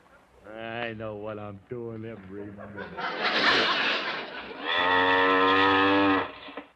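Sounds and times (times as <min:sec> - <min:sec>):
speech: 0:00.5 - 0:05.7
laughter: 0:02.2 - 0:04.6
cow mooing: 0:04.6 - 0:06.5.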